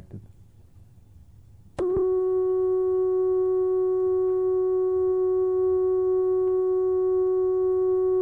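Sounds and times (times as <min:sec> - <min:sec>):
steady sine wave tone from a synthesizer oscillator patched into a studio mixer: 0:01.8 - 0:08.2.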